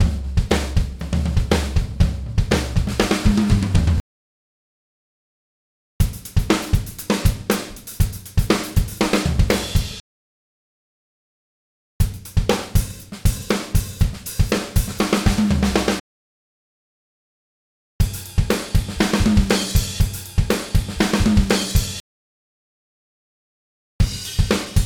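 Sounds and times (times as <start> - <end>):
modern rock drum fill: 0.0 - 4.0, 6.0 - 10.0, 12.0 - 16.0, 18.0 - 22.0, 24.0 - 24.8.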